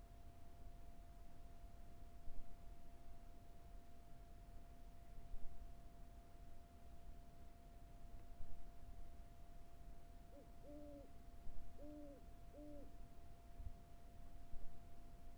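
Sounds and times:
faint steady tone: 0.0 - 15.3
owl hooting on the Carrizo Plain: 10.3 - 11.1, 11.8 - 13.0.

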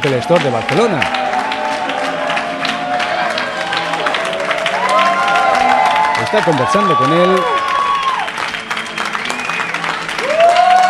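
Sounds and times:
speech: 0.0 - 1.2, 6.3 - 7.6
crowd applauding and cheering a customer entering an Apple Store in Barcelona: 0.0 - 10.8
whistles from a crowd: 8.8 - 10.0.

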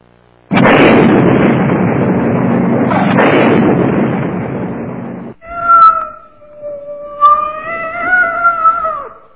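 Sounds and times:
burning sealed cardboard box in a smouldering trash pit: 0.5 - 5.4
cat yowling in distress trapped in a burning cardboard box: 5.4 - 9.3.

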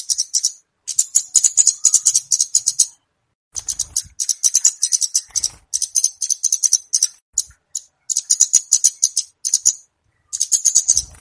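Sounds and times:
flowerpecker lure calls of very high rapid ticks and trills: 0.0 - 11.1.

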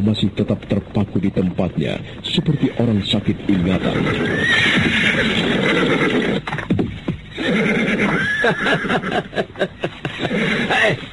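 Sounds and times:
speech: 0.0 - 6.2, 7.4 - 11.1
horse snorting and nickering: 2.0 - 9.4, 10.0 - 11.0
horse neighing in a loud high whinny: 2.2 - 6.7, 7.3 - 9.4, 10.1 - 11.0
laughter: 8.2 - 11.0.

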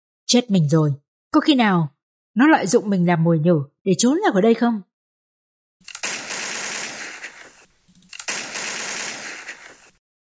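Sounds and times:
speech: 0.3 - 4.9
machine-gun fire sound effect: 5.9 - 10.0.

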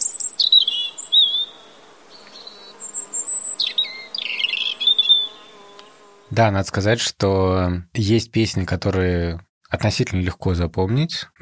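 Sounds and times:
European robin singing: 0.0 - 6.2
speech: 6.3 - 11.4.

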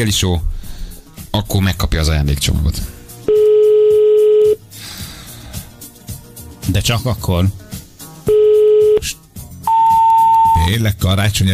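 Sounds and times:
speech: 0.0 - 0.6, 1.4 - 3.0, 6.7 - 7.6, 10.7 - 11.5
long steady low telephone tone on a call: 3.3 - 4.6, 8.3 - 9.0, 9.7 - 10.7.

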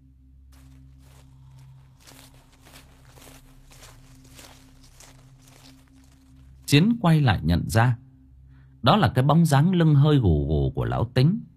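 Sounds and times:
steady low hum: 0.0 - 8.9
slow scuffing footsteps approaching from behind: 0.5 - 6.9
speech: 6.7 - 8.0, 8.8 - 11.5.

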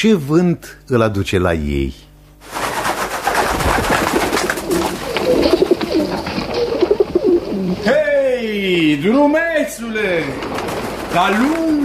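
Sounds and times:
speech: 0.0 - 2.1, 8.6 - 11.8
pigeons cooing: 3.3 - 7.9.

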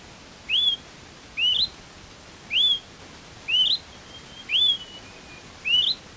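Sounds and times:
hiss: 0.0 - 6.1
Smoke-colored Pewee subspecies zarumae calling: 0.5 - 0.8, 1.4 - 1.7, 2.5 - 2.9, 3.5 - 6.0.

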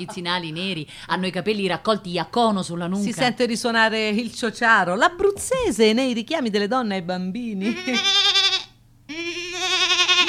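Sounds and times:
speech: 0.0 - 8.3
goat bleating from the doorway of a shack: 7.6 - 10.2.

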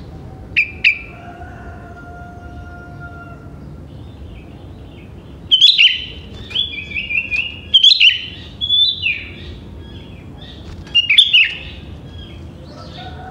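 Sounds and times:
sooty-headed bulbul song: 0.0 - 1.2, 3.7 - 13.2.

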